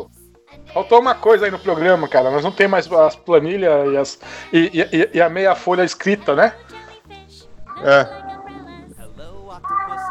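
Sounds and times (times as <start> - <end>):
speech: 0.8 - 6.7, 7.8 - 8.2
cat meowing with a drawn-out high tonal cry: 7.7 - 8.9, 9.6 - 10.0.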